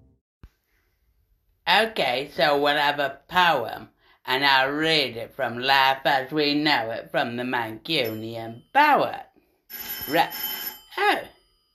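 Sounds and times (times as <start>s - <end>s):
speech: 1.7s - 11.3s
telephone ringing in bright warbling bursts: 9.7s - 11.7s.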